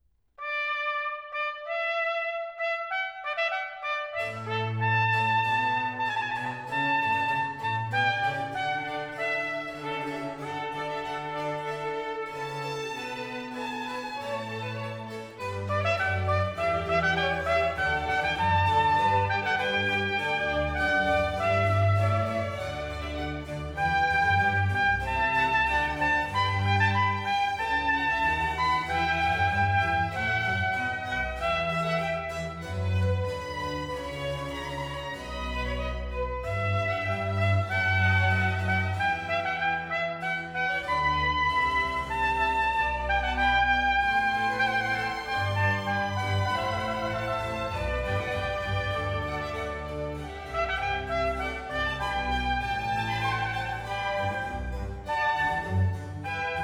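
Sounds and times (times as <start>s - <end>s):
trumpet playing a canzone in D major: 0.4s - 56.6s
strings playing a canzone in D major: 3.3s - 56.6s.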